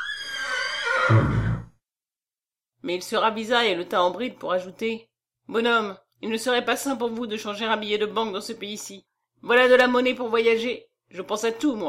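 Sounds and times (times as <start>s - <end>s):
horse whinnying: 0.0s - 1.8s
speech: 2.9s - 11.8s.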